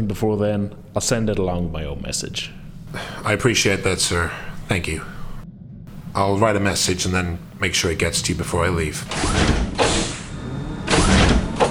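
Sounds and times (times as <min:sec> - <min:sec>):
speech: 0:00.0 - 0:05.2, 0:06.1 - 0:09.9
office sliding door whooshing shut: 0:09.0 - 0:11.6.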